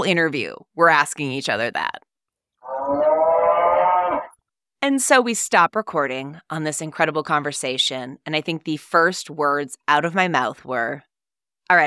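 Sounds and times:
speech: 0.0 - 2.0, 4.8 - 11.1, 11.7 - 11.8
neighbor's cow mooing outside a window: 2.6 - 4.4.

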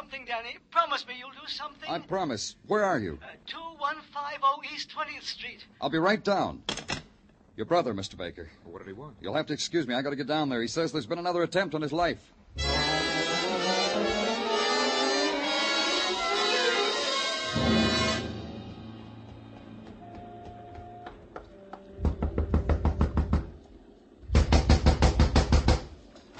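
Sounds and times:
speech: 0.1 - 7.0, 7.6 - 12.8
dense musical passage: 12.6 - 20.4
rapid knocking on a door: 22.0 - 23.6, 24.3 - 26.0.

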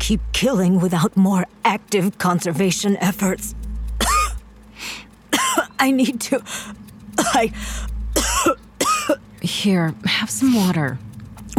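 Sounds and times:
speech: 0.1 - 3.6, 5.8 - 11.5
woman clearing throat: 4.0 - 4.4, 5.4 - 5.7, 7.2 - 7.5, 8.2 - 9.2
woman coughing harshly: 4.0 - 4.4, 5.3 - 5.7, 7.2 - 7.5, 8.2 - 9.2.

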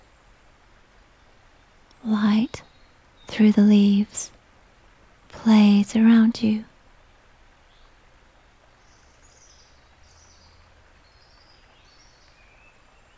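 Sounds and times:
faint birds chirping in woodland: 0.0 - 13.1
speech: 2.0 - 2.7, 3.3 - 4.4, 5.4 - 6.7.

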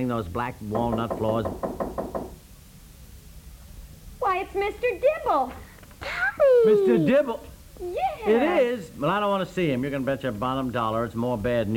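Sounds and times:
speech: 0.0 - 1.8, 4.5 - 11.7
knocking on a door: 0.7 - 2.4.

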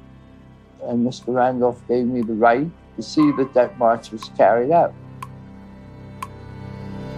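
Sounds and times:
speech: 0.8 - 5.0
clock ticking: 3.2 - 4.4.

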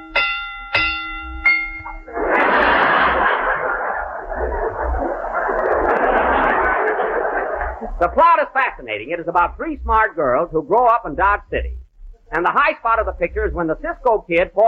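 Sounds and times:
bright bell dings: 0.0 - 2.1
loud steady wash of dense noise: 0.8 - 14.6
laughter: 2.1 - 8.8
speech: 8.0 - 14.6.

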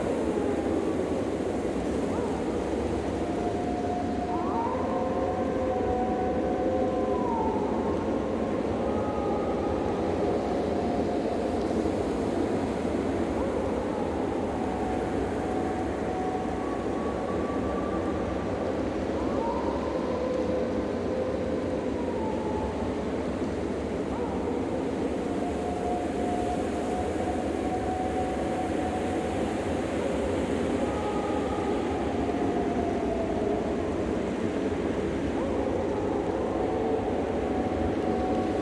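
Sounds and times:
faint wolf howls: 0.0 - 38.5
wind roaring with blowing snow: 0.0 - 38.5.

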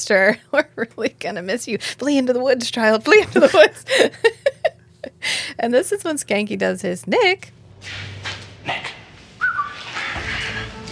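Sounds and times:
speech: 0.0 - 4.4, 5.2 - 8.9
person whistling to call someone back: 9.4 - 9.9.

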